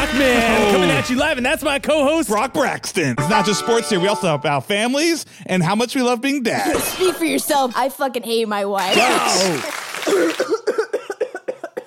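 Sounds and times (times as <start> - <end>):
speech: 0.1 - 10.7
chronic harsh hacking cough: 10.0 - 11.8.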